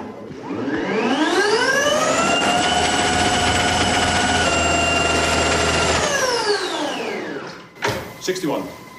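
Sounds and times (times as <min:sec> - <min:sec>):
electric scooter motor whining: 0:00.4 - 0:07.8
brief mechanical clunks: 0:07.6 - 0:08.2.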